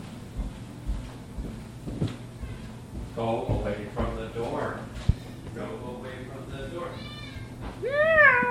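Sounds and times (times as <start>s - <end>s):
low steady hum: 0.0s - 8.4s
drugged cat meowing to go outside: 6.9s - 8.4s.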